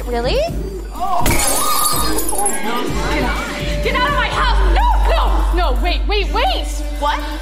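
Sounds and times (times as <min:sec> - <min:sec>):
speech: 0:00.1 - 0:01.5, 0:05.7 - 0:07.3
raised voices: 0:00.9 - 0:05.4
breaking glass shards clattering: 0:01.0 - 0:03.0
glass shattering with a loud sharp crash: 0:01.0 - 0:03.5.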